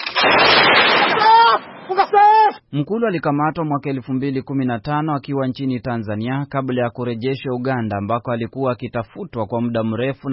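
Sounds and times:
heavy weapons gunfire bursts during an armed clash in the DRC: 0.0 - 2.0
speech: 2.7 - 10.3.

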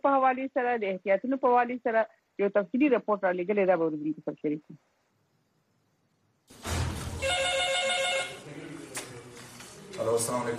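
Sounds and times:
speech: 0.0 - 5.0, 10.0 - 10.5
telephone ringing at an emergency medical rescue service: 7.2 - 8.5.

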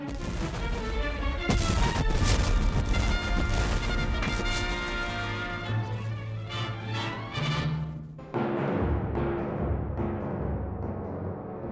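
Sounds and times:
cannon fire of ironclad warships booming: 0.0 - 5.7
sustained dramatic musical backdrop: 0.0 - 11.7.

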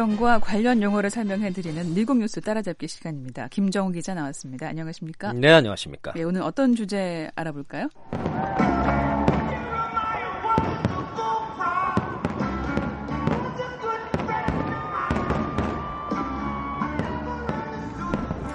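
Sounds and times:
speech: 0.0 - 8.7
fireworks at a July 4 Independence Day display in Washington DC: 8.0 - 18.5
music from a large outdoor gathering: 8.1 - 18.5.

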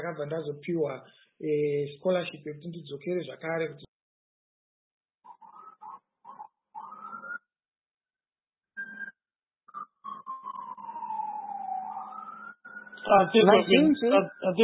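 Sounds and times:
speech: 0.0 - 3.9, 13.1 - 14.6
police sirens outside: 5.5 - 7.4, 9.8 - 14.6.

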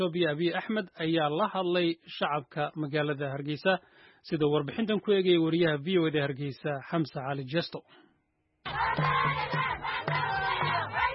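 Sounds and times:
speech: 0.0 - 10.2
large crowd shouting in the main streets of Hargeisa: 8.7 - 11.1.

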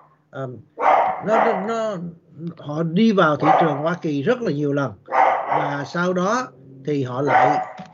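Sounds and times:
speech: 0.3 - 7.9
house dog barking at visitors: 0.8 - 1.8, 3.4 - 4.0, 5.1 - 5.9, 7.2 - 7.9.

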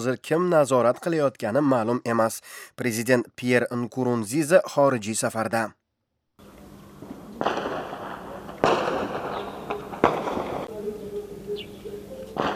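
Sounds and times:
speech: 0.0 - 5.8, 7.4 - 7.7
explosions in a city during a military coup attempt: 7.0 - 10.7
gunfire in a city during a military coup attempt: 7.0 - 10.7, 12.4 - 12.5.

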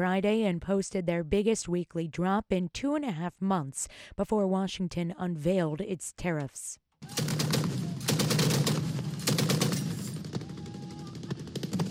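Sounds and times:
speech: 0.0 - 7.4
heavy machine guns firing in rapid bursts near a Yemeni port city: 7.0 - 11.8
sparser scattered shots: 7.0 - 11.8.

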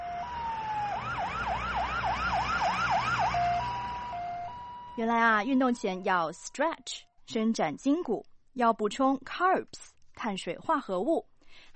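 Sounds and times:
ambulance siren wailing: 0.0 - 6.2
faint road noise: 0.0 - 6.6
speech: 5.0 - 11.7.

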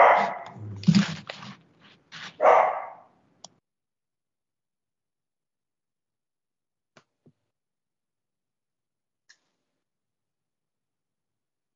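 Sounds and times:
dog barking: 0.0 - 0.7, 2.4 - 3.1.

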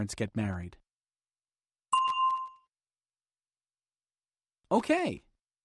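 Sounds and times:
speech: 0.0 - 0.8, 4.7 - 5.3
single bright bell ding as answer cue: 2.0 - 2.7.

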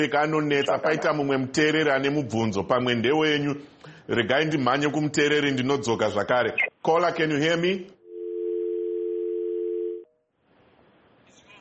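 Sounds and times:
speech: 0.0 - 8.0
telephone dial tone after a caller is disconnected: 8.0 - 10.1.

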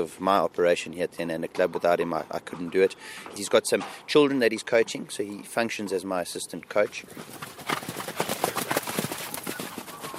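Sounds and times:
speech: 0.0 - 8.0
several horses galloping around a dirt track: 6.7 - 10.1.

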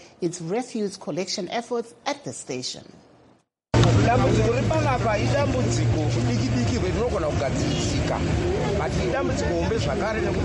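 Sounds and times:
speech: 0.2 - 3.1, 4.1 - 10.4
babble of many overlapping voices at a bus terminus in Harare: 3.8 - 10.4.

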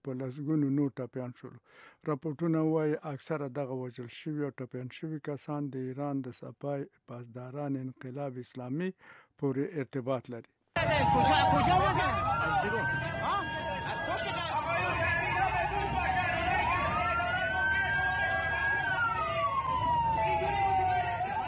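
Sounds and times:
speech: 0.0 - 13.4
ambulance siren wailing from vehicles carrying wounded to hospitals in Iran: 10.8 - 21.4.

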